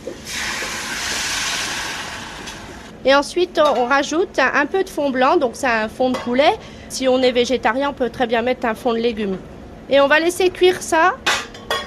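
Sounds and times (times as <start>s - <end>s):
pan sizzling as it is deglazed with savagnin wine: 0.0s - 2.9s
speech: 3.0s - 11.3s.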